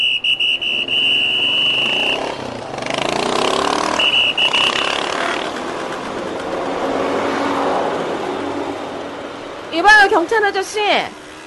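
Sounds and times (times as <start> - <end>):
high whistle-like tone: 0.0 - 2.5, 3.9 - 5.1
dense city traffic jam rumbling: 0.0 - 11.4
car engines revving and idling in a traffic jam: 0.6 - 9.7
speech: 9.8 - 11.2.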